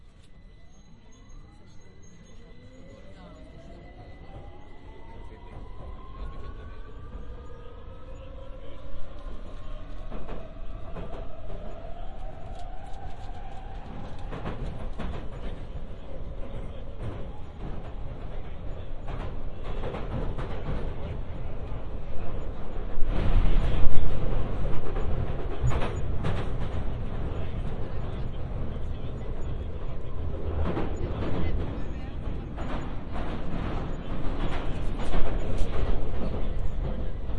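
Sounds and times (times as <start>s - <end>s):
faint whining tone: 0.0s - 15.7s
London Underground Victoria Line train rumbling: 0.0s - 37.3s.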